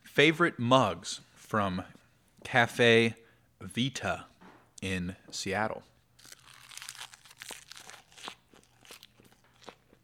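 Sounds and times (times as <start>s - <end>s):
speech: 0.2s - 5.9s
person chewing crisp food: 6.2s - 10.0s.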